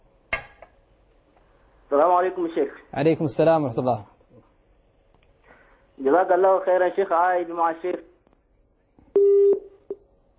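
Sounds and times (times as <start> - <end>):
speech: 1.9 - 4.1, 6.0 - 8.1
telephone busy tone after a call dropped: 9.2 - 9.6.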